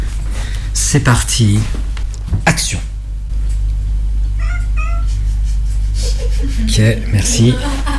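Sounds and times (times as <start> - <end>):
steady low hum of mechanical ventilation in a living room: 0.0 - 7.9
speech: 0.8 - 2.9, 6.4 - 7.9
cat meowing: 4.4 - 5.1
cat chirping: 4.4 - 5.2
laughter: 5.0 - 7.9.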